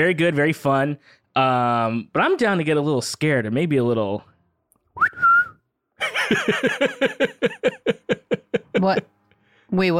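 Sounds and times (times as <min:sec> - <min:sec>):
speech: 0:00.0 - 0:04.3, 0:05.0 - 0:05.3, 0:06.0 - 0:09.9
person wolf whistling: 0:05.0 - 0:05.6
person laughing: 0:06.0 - 0:09.1.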